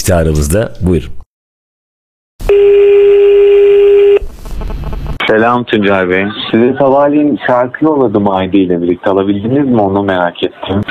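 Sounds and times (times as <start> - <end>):
speech: 0.0 - 1.2, 5.3 - 10.8
loud steady telephone tone: 2.4 - 5.2.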